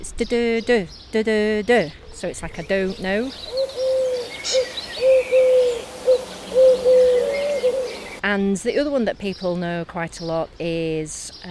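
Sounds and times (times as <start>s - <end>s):
speech: 0.0s - 3.7s, 8.2s - 11.5s
faint outdoor noise: 0.0s - 11.5s
collared dove three-note cooing call: 2.1s - 8.2s.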